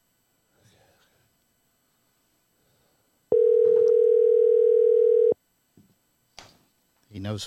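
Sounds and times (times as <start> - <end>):
telephone dial tone while calling: 3.3 - 5.4
speech: 7.3 - 7.4.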